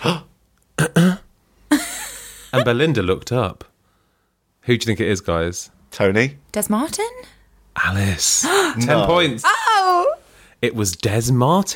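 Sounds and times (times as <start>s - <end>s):
speech: 0.0s - 0.3s, 2.5s - 3.7s, 4.6s - 11.7s
short rough coughs: 0.8s - 1.3s.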